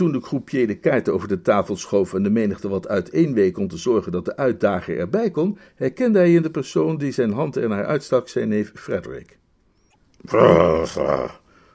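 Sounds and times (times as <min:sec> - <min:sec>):
speech: 0:00.0 - 0:09.4, 0:10.2 - 0:11.4
man imitating an angry growl: 0:10.2 - 0:11.4.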